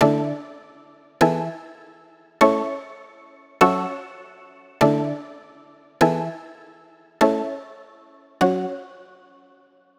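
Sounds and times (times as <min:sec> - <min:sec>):
plucky attacky keyboard chords in F sharp minor: 0:00.0 - 0:00.6, 0:01.2 - 0:01.6, 0:02.4 - 0:02.9, 0:03.6 - 0:05.4, 0:06.0 - 0:06.5, 0:07.2 - 0:07.7, 0:08.4 - 0:08.9.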